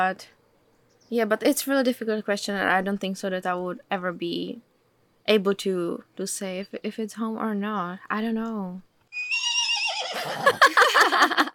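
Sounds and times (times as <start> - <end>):
speech: 0.0 - 0.4, 1.1 - 4.7, 5.3 - 8.9, 10.2 - 11.5
small horse in California whinnying: 9.1 - 10.6
laughter: 10.1 - 11.5.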